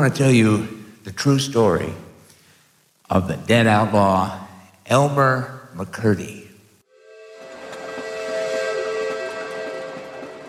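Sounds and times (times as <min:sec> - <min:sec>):
speech: 0:00.0 - 0:02.1, 0:03.1 - 0:06.4
steam train whistle blast: 0:07.0 - 0:10.4
moving steam train rumbling and hissing: 0:07.4 - 0:10.4.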